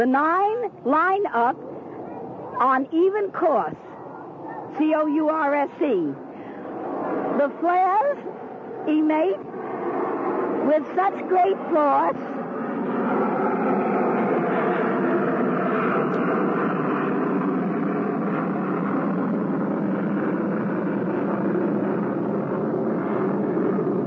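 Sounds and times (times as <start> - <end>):
speech: 0.0 - 1.7, 2.6 - 3.9, 4.7 - 6.2, 7.4 - 9.5, 10.6 - 12.3
broad roar of airplanes passing overhead: 0.0 - 24.0.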